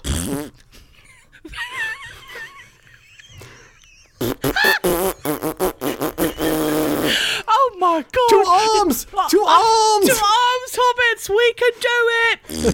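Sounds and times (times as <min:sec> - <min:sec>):
loud sputtering fart sound effect: 0:00.0 - 0:00.6, 0:04.2 - 0:07.2, 0:12.5 - 0:12.7
speech: 0:00.2 - 0:00.7, 0:08.0 - 0:12.7
laughter: 0:01.0 - 0:05.0.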